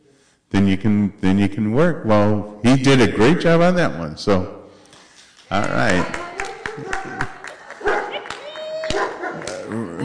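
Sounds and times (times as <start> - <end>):
speech: 0.5 - 4.6, 5.5 - 6.2, 6.8 - 7.2
dog barking and yipping: 7.8 - 8.2, 9.0 - 9.4.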